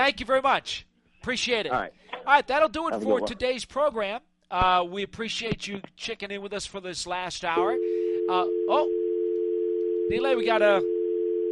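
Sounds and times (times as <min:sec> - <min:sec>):
speech: 0:00.0 - 0:09.0, 0:10.1 - 0:10.9
telephone dial tone: 0:07.8 - 0:11.4.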